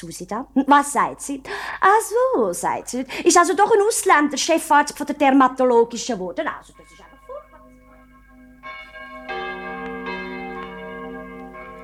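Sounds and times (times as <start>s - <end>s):
speech: 0.0s - 7.1s
church bell striking the hour: 4.8s - 11.8s.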